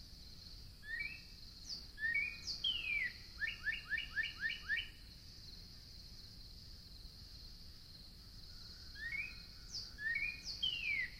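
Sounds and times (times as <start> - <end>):
faint high hiss: 0.0 - 11.1
Northern cardinal singing whistled slurs: 0.9 - 4.9, 9.0 - 11.1.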